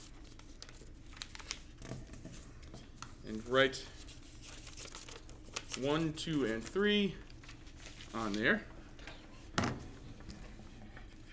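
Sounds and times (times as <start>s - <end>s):
paper sheets folded into three sections rustling and crinkling as they are handed out: 0.0s - 8.8s
speech: 3.3s - 4.0s, 5.8s - 7.2s, 8.1s - 8.7s.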